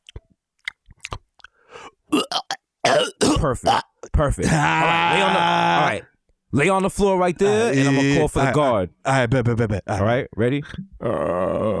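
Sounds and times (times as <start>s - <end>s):
quiet mouth clicks: 0.0s - 2.6s
person pretending to be sick coughing wetly: 2.2s - 4.6s
speech: 3.4s - 11.7s.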